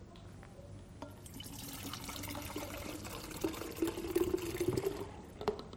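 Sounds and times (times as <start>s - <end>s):
brown bitter water pouring into a jug: 1.2s - 5.4s.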